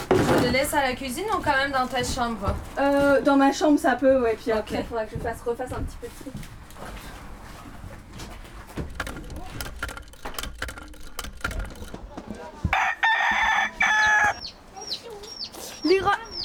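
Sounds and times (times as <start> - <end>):
clattering noise: 0.0 - 16.4
speech: 0.4 - 7.0
rooster crowing: 12.7 - 14.6
quick high bird chirps: 14.0 - 16.4.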